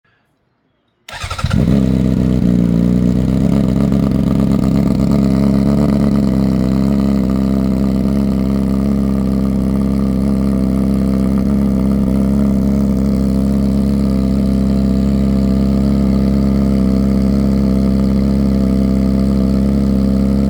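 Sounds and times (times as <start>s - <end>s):
Honda CBR600RR motorcycle with Oval exhaust system idling: 1.1s - 20.4s.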